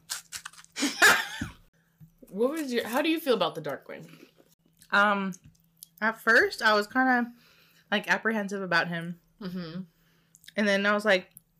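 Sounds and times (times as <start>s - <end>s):
crisp crunching of food being chewed: 0.0s - 0.9s
speech: 2.3s - 4.3s, 4.9s - 9.9s, 10.6s - 11.3s.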